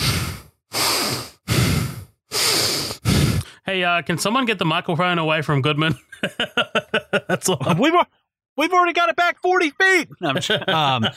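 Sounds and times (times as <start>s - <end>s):
voice imitating a man's heavy creepy breathing: 0.0s - 3.7s
speech: 3.7s - 11.1s
laughter: 5.9s - 8.0s, 10.0s - 11.1s.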